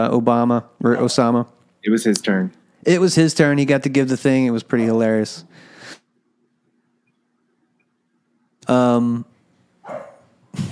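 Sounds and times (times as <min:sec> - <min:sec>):
speech: 0:00.0 - 0:05.7, 0:08.7 - 0:09.3
dog barking: 0:09.8 - 0:10.4.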